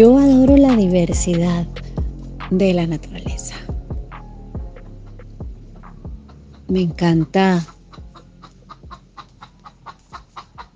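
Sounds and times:
speech: 0.0 - 1.9, 2.5 - 3.6, 6.7 - 7.8
hens clucking: 6.2 - 10.7.

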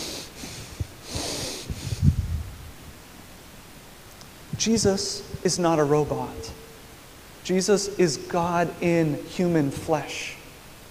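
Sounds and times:
heavy forceful angry breathing through the nose: 0.0 - 2.2
speech: 4.6 - 6.6, 7.5 - 10.4.

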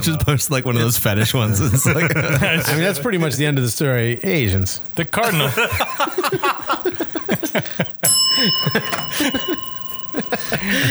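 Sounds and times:
speech: 0.0 - 6.6, 7.5 - 9.6, 10.6 - 10.8
laughter: 0.0 - 10.8
people chatting: 0.0 - 10.8
small bell ringing: 6.8 - 10.8.

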